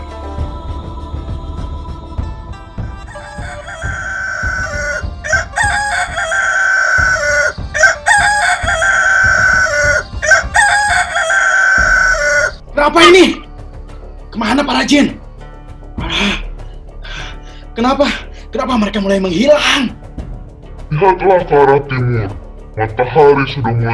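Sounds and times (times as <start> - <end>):
rooster crowing: 3.1 - 12.6
speech: 12.8 - 13.4, 14.5 - 15.2, 17.8 - 20.0, 21.0 - 23.9.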